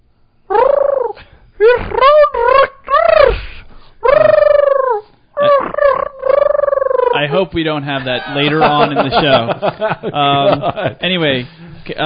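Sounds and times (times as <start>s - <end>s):
person imitating a pigeon's warbling throaty cooing: 0.5s - 7.3s
speech: 7.2s - 12.0s
laughter: 8.0s - 11.2s.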